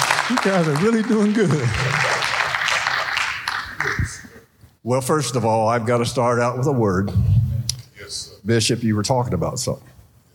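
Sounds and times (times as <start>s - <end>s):
audience clapping: 0.0s - 4.4s
speech: 0.3s - 2.1s, 4.8s - 7.3s, 8.1s - 9.9s.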